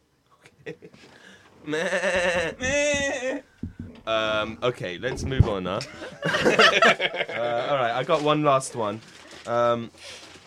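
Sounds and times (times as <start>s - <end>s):
speech: 0.7s - 3.4s, 4.1s - 10.2s
sheep bleating: 1.7s - 3.4s
laughter: 5.8s - 8.2s.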